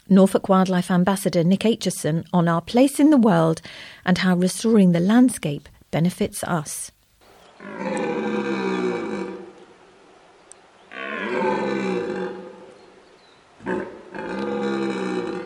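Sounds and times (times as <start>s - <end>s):
speech: 0.1s - 7.0s, 7.6s - 8.5s
red deer stag giving its mating roar from a reedbed: 7.6s - 9.7s, 10.9s - 12.8s, 13.6s - 15.4s.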